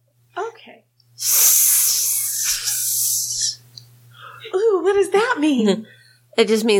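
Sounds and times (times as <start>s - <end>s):
speech: 0.7s - 1.4s, 4.9s - 6.7s
voice imitating a water snake speaking with a breathy hiss: 1.2s - 3.7s.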